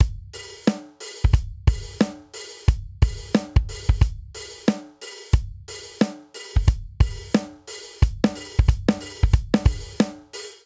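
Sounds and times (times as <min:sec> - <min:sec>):
swing hip hop drum beat: 0:00.0 - 0:10.6.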